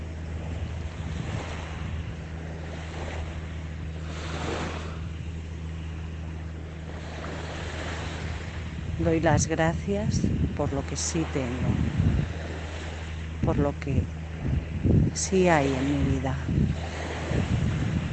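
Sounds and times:
Mediterranean sea waves washing onto a beach: 0.0s - 18.1s
low constant hum: 0.0s - 18.1s
wind noise: 0.0s - 18.1s
speech: 9.0s - 12.5s, 13.5s - 17.8s.

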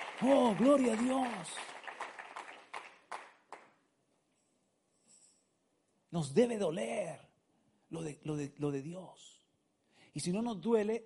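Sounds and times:
audience clapping rhythmically during a sermon: 0.0s - 3.9s
speech: 0.2s - 1.7s, 6.1s - 7.3s, 7.9s - 9.4s, 10.1s - 11.0s.

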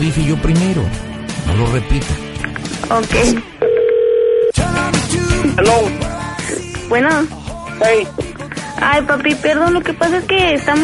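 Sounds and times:
speech: 0.0s - 2.3s, 2.9s - 3.5s, 4.6s - 6.2s, 6.9s - 10.8s
loud telephone dial tone while dialing a call: 3.6s - 4.6s.

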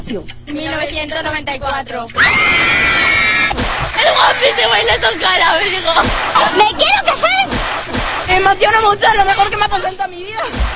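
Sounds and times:
speech: 0.1s - 10.7s
Spanish female fans screaming in high-pitched unison: 2.2s - 4.5s
laughter: 2.2s - 8.0s.

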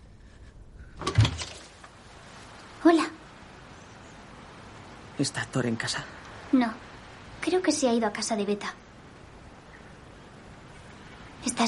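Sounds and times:
house door being opened with a clunk and rattle: 1.0s - 1.8s
speech: 5.2s - 8.8s.

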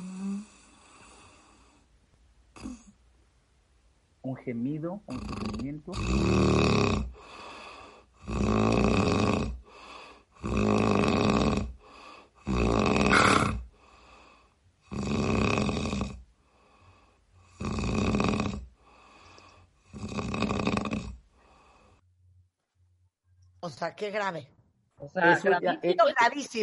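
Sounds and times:
person snoring loudly with heavy rasping snores: 0.0s - 1.5s, 5.1s - 7.4s, 8.2s - 9.7s, 10.4s - 11.8s, 12.4s - 13.7s, 14.9s - 16.2s, 17.4s - 19.0s, 19.8s - 21.7s
speech: 4.2s - 7.0s, 23.7s - 26.6s.

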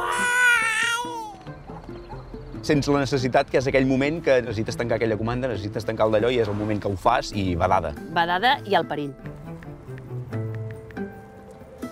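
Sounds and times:
young children bawling and screaming with high-pitched wail and sobs: 0.0s - 1.5s
speech: 2.6s - 9.3s.

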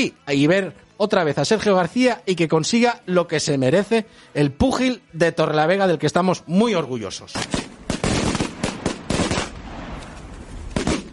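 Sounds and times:
speech: 0.0s - 7.6s
string of firecrackers exploding: 7.4s - 11.1s.

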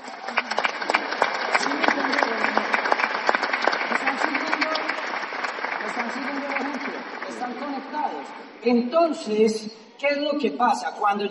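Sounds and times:
audience clapping: 0.0s - 8.4s
speech: 8.6s - 11.2s.

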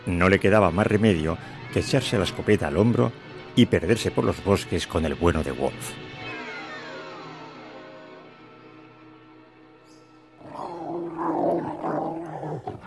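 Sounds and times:
speech: 0.0s - 6.1s
dog growling and snarling: 10.4s - 12.8s.

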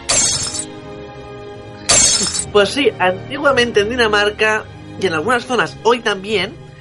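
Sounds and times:
ceramic plate smashing: 0.0s - 0.7s, 1.9s - 2.5s
speech: 2.5s - 6.6s.

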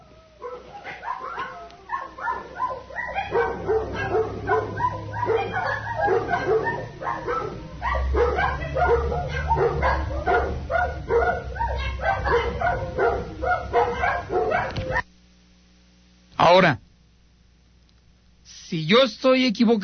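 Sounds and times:
several dogs barking and yipping: 0.0s - 15.0s
speech: 19.0s - 19.8s.

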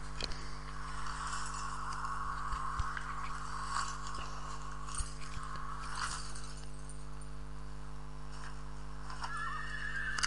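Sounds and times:
steady low hum: 0.0s - 10.2s
horse whinnying and snorting as a rider mounts it: 9.2s - 10.2s.

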